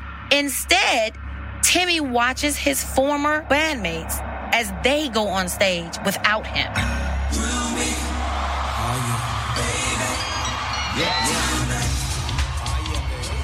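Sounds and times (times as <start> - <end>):
speech: 0.3 - 7.5
huge stadium crowd roaring and cheering: 2.7 - 13.4.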